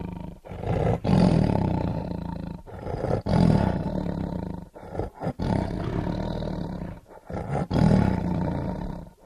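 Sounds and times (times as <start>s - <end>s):
tiger roaring: 0.0s - 9.2s.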